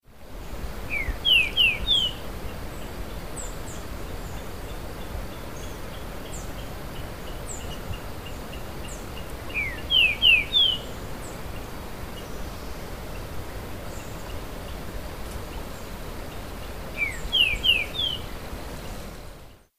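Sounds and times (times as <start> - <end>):
Saltator similis singing: 0.9 - 2.2, 2.8 - 11.4, 16.3 - 18.6.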